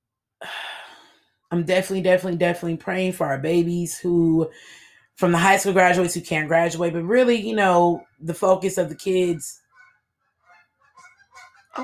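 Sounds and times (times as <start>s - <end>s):
speech: 1.5s - 9.6s
goose or duck honking outdoors: 9.6s - 11.8s.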